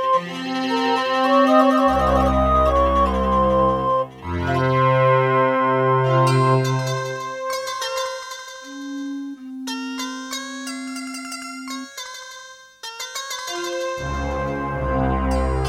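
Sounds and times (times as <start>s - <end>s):
Aztech CS9233 sound card intro music: 0.2s - 7.7s, 13.5s - 15.6s.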